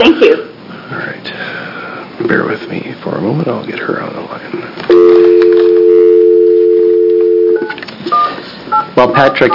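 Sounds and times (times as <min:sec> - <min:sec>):
speech: 0:02.3 - 0:05.5, 0:09.0 - 0:09.5
telephone dial tone: 0:04.9 - 0:08.3
touch-tone dialing beeps: 0:04.9 - 0:09.5.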